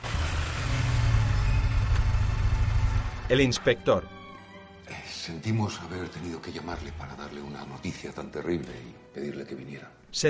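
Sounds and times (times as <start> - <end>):
powerful black motorcycle engine idling after stopping at a morgue door: 0.0 - 3.3
speech: 3.3 - 4.2, 4.9 - 10.2.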